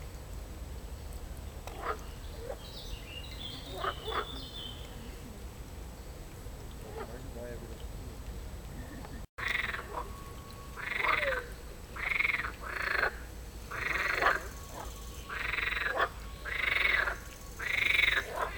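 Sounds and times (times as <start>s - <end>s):
background hiss: 0.0s - 18.5s
frog croaking in raspy bursts: 9.4s - 10.2s, 10.8s - 18.5s.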